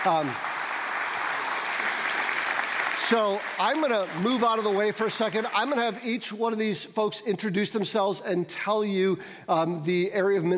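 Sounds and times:
speech: 0.0s - 0.5s, 3.1s - 10.5s
audience applause: 0.0s - 6.0s.

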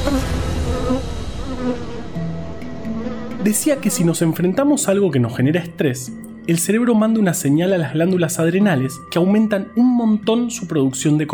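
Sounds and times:
bee buzzing: 0.0s - 4.6s
speech: 0.1s - 2.0s, 3.4s - 11.3s.

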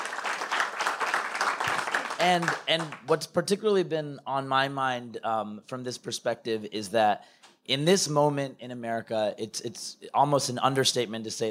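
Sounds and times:
audience round of applause: 0.0s - 3.1s
speech: 2.2s - 11.4s.

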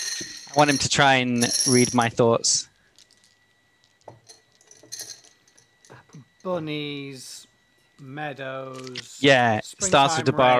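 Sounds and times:
dice being picked up and rattled: 0.0s - 2.1s, 2.9s - 5.3s
speech: 0.6s - 2.7s, 6.4s - 7.4s, 8.0s - 10.5s.

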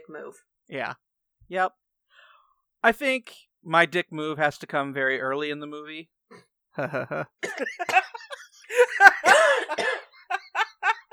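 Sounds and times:
speech: 0.1s - 1.8s, 2.8s - 10.0s
laughter: 6.8s - 11.1s
person with a tickle in the throat clearing throat: 7.4s - 8.3s, 9.3s - 10.3s
person with a tickle in the throat coughing: 7.4s - 10.6s.

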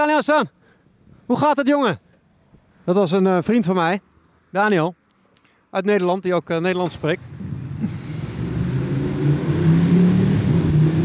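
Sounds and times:
speech: 0.0s - 0.6s, 1.3s - 2.0s, 2.9s - 5.0s, 5.7s - 8.0s
car engine rumbling in street traffic: 6.7s - 11.0s.

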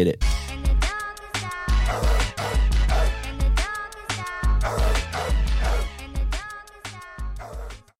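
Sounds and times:
speech: 0.0s - 0.3s
short punchy dog-themed segment jingle with thumping bass and steady drums: 0.0s - 7.9s.

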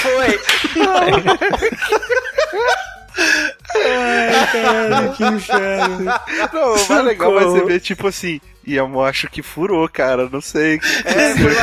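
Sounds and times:
loud sharp slap of a hand on buttocks: 0.0s - 1.1s
chuckling and laughter: 0.0s - 7.2s, 10.8s - 11.6s
speech: 0.2s - 2.9s, 4.5s - 11.6s.

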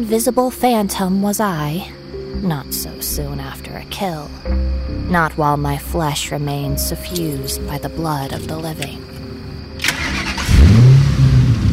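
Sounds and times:
speech: 0.0s - 9.1s
1964 Mustang convertible engine cranking and revving: 9.8s - 11.7s.

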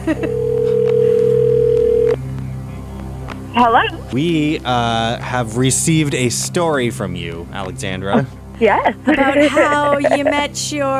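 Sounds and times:
laughter: 0.0s - 0.4s, 7.9s - 10.5s
speech: 0.0s - 0.4s, 3.6s - 10.9s
low hum: 0.0s - 10.9s
telephone ringback tone on an outgoing call: 0.2s - 2.2s.

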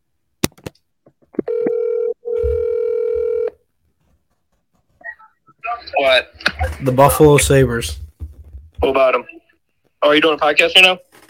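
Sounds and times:
clicks and beeps of a phone number being dialed: 1.4s - 3.6s
long steady ringing tones from the telephone handset: 1.4s - 3.6s
speech: 6.0s - 8.0s, 10.1s - 11.1s.

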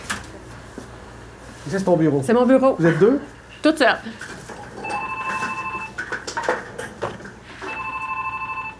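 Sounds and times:
speech: 1.7s - 4.4s
telephone ringing with rapid trilling electronic tones: 4.8s - 6.0s, 7.6s - 8.7s.

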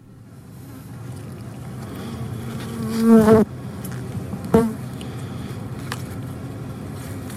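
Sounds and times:
low hum: 0.0s - 7.3s
bees buzzing: 1.8s - 3.8s, 4.5s - 4.9s.

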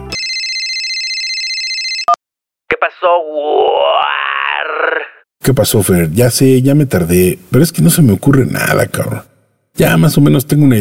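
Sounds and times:
mobile phone ringing with a warbling electronic tone: 0.0s - 2.2s
speech: 2.8s - 10.8s.

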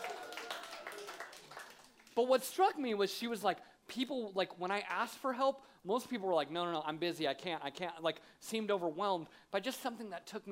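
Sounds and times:
crowd clapping and cheering: 0.0s - 2.2s
speech: 2.2s - 10.4s.

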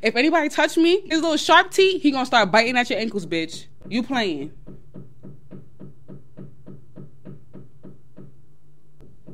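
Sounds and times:
speech: 0.0s - 4.6s
neighbor knocking on a wall or door: 3.6s - 9.3s.

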